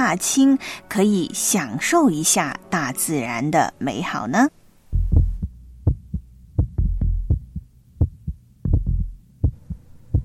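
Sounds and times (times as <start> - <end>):
speech: 0.0 - 4.6
faint low hum: 4.5 - 10.2
heartbeat thumping: 4.9 - 10.2.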